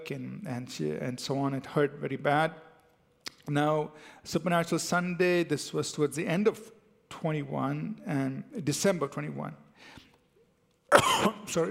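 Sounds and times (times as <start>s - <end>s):
speech: 0.1s - 2.7s, 3.4s - 10.0s, 10.9s - 11.6s
person coughing into the microphone: 10.9s - 11.5s
throat clearing: 10.9s - 11.5s.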